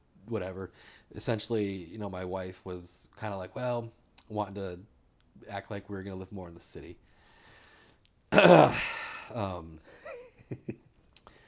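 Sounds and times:
speech: 0:00.3 - 0:07.1, 0:08.3 - 0:09.9, 0:10.5 - 0:10.8
heavy out-of-breath breathing: 0:07.1 - 0:10.1.

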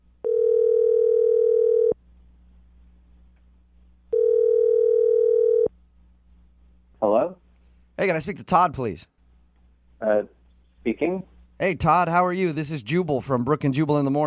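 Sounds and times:
telephone dial tone: 0:00.2 - 0:01.9, 0:04.1 - 0:05.7
speech: 0:08.0 - 0:09.1, 0:10.0 - 0:10.3, 0:11.0 - 0:14.2.

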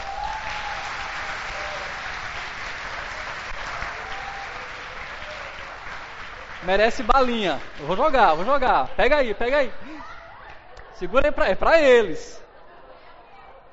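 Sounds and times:
audience applauding: 0:00.0 - 0:09.7
speech: 0:06.6 - 0:09.8, 0:11.0 - 0:12.4.

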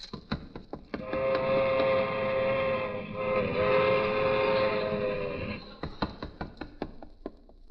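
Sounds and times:
train wheels clacking on the rails: 0:00.8 - 0:06.0
train rumbling past: 0:01.0 - 0:05.8.

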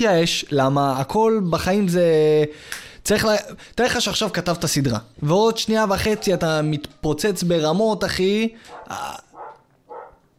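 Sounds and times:
speech: 0:00.0 - 0:09.2
dog barks: 0:06.0 - 0:06.8, 0:08.7 - 0:10.3.

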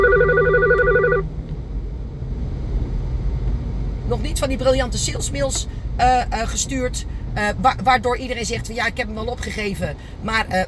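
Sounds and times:
telephone ringing with an incoming call: 0:00.0 - 0:01.2
low rumble: 0:00.0 - 0:10.6
speech: 0:04.2 - 0:10.6.

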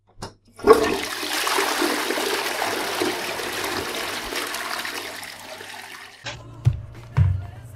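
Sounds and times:
toilet tank refilling with knocks and gurgles: 0:00.6 - 0:06.2
toilet flushing: 0:00.6 - 0:06.3.

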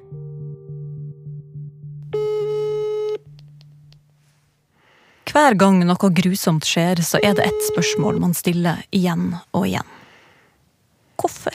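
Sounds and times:
telephone ringing tone on a line during a call: 0:02.2 - 0:03.2, 0:07.2 - 0:08.3
speech: 0:05.4 - 0:10.0, 0:11.2 - 0:11.5.

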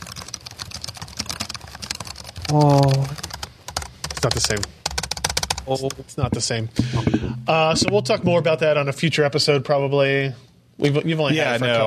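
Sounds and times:
rapid typing on a laptop keyboard: 0:00.0 - 0:06.0
speech: 0:02.5 - 0:03.2, 0:04.2 - 0:04.8, 0:05.6 - 0:11.8.

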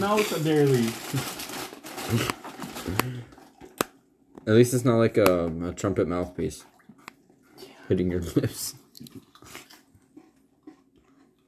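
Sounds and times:
speech: 0:00.0 - 0:01.5, 0:02.1 - 0:03.4, 0:04.4 - 0:06.7, 0:07.9 - 0:09.3
faint breathing: 0:02.8 - 0:03.4, 0:07.4 - 0:08.0
quiet chewing on a plastic cap: 0:08.9 - 0:11.4.

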